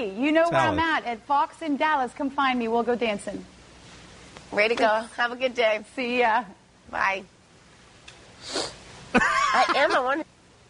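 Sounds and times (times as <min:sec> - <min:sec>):
speech: 0:00.0 - 0:03.6, 0:04.5 - 0:07.4, 0:08.4 - 0:10.3
short breathy sniff through the nose: 0:08.4 - 0:08.8.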